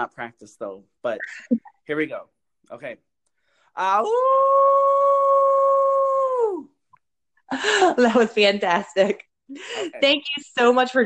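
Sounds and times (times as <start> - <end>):
speech: 0.0 - 3.1, 3.8 - 4.8, 7.5 - 11.0
person imitating a wolf howl: 4.0 - 6.7.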